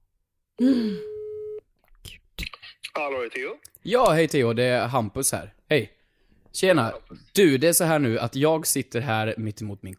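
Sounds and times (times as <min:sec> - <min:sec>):
speech: 0:00.6 - 0:01.1, 0:03.0 - 0:09.9
breathy vocal sound: 0:00.6 - 0:01.2
phone line ringing tone: 0:01.0 - 0:01.6.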